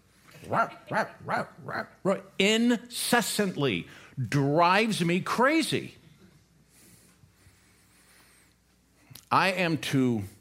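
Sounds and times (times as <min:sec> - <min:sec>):
dog barking while watching two other dogs play outside: 0:00.5 - 0:02.0
speech: 0:00.5 - 0:06.0, 0:09.3 - 0:10.4.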